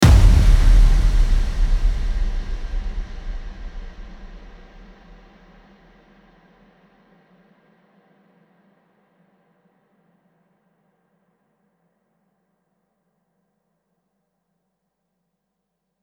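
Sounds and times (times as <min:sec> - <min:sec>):
impact transition effect: 0:00.0 - 0:04.9.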